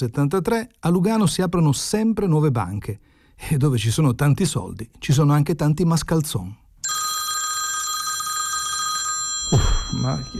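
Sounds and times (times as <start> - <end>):
speech: 0.0 - 6.6, 9.9 - 10.3
telephone ringing with an electronic trill: 6.8 - 10.3.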